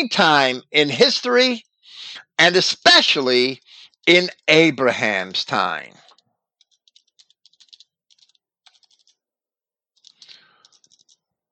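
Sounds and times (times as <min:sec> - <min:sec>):
speech: 0:00.0 - 0:06.0
typing on a computer keyboard: 0:05.9 - 0:09.2, 0:10.0 - 0:11.5.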